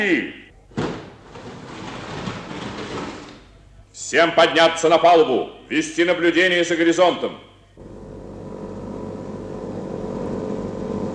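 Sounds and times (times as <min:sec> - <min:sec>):
speech: 0:00.0 - 0:00.4, 0:04.0 - 0:07.9
airplane engine drone and rumble while approaching to land: 0:07.8 - 0:11.1.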